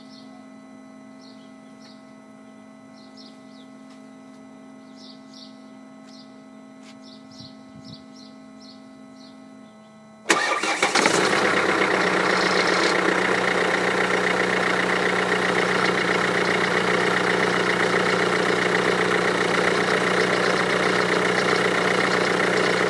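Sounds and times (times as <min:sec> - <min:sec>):
E250 OM651 engine cold start in E-Class W212: 0:10.3 - 0:22.8.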